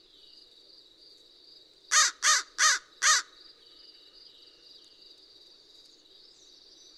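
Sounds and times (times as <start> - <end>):
American crow giving rough rasping caws: 1.9 - 3.4.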